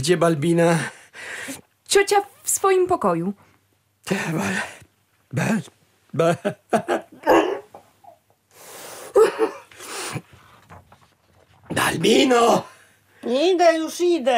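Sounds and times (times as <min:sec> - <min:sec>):
speech: 0:00.0 - 0:03.4, 0:04.1 - 0:07.0, 0:11.7 - 0:14.3
person sneezing: 0:08.5 - 0:10.3.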